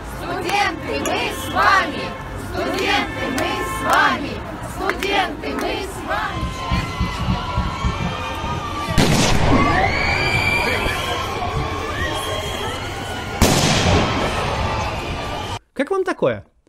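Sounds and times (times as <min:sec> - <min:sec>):
crowd voices of marching elderly pensioners: 0:00.0 - 0:15.6
speech: 0:00.7 - 0:04.2, 0:15.8 - 0:16.5
stun grenade exploding among a crowd of marching pensioners: 0:13.4 - 0:14.6.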